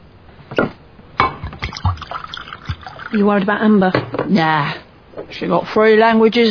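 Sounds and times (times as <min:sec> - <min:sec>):
sharp glassy knocks: 0:01.2 - 0:03.0
drink being poured into a glass: 0:01.4 - 0:03.4
speech: 0:03.1 - 0:04.8, 0:05.4 - 0:06.5.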